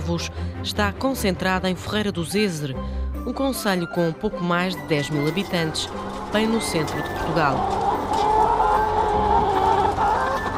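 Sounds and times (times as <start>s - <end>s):
speech: 0.1s - 8.3s
many hens clucking and murmuring in a poultry house: 4.8s - 10.5s.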